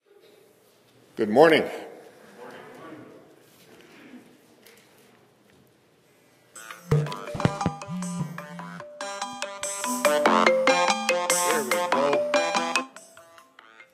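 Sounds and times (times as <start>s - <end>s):
speech: 1.2s - 1.8s
electronic phone ringtone with synthetic beeping tones: 6.6s - 13.9s.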